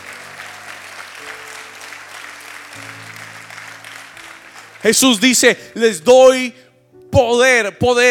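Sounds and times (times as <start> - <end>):
crowd applauding loudly: 0.0 - 5.6
speech: 4.8 - 8.0.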